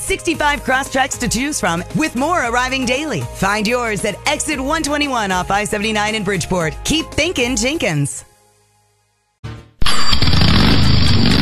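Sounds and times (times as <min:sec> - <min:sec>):
speech: 0:00.1 - 0:08.3
motorcycle engine cranking and revving: 0:09.8 - 0:11.3.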